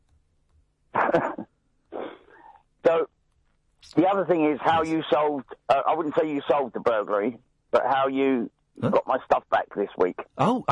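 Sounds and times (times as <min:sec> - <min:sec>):
laughter: 0:01.0 - 0:01.4, 0:04.4 - 0:06.8, 0:08.8 - 0:09.4
person coughing: 0:01.0 - 0:03.1
speech: 0:01.2 - 0:01.5, 0:02.8 - 0:03.2, 0:03.8 - 0:10.7.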